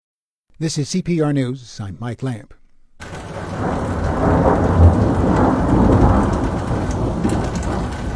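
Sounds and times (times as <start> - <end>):
speech: 0.6 - 2.6
deep thunder rumbling: 3.0 - 8.1
steady heavy rain: 3.0 - 8.1.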